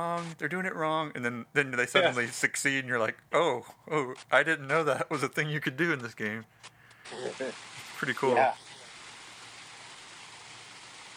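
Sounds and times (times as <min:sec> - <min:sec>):
speech: 0:00.0 - 0:08.6
steady even rain falling: 0:07.1 - 0:11.1.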